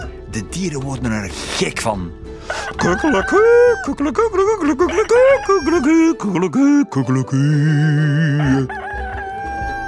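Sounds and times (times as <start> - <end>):
speech: 0.4 - 8.8
person imitating a rooster crow as voice exercises: 2.6 - 3.9, 8.0 - 9.8.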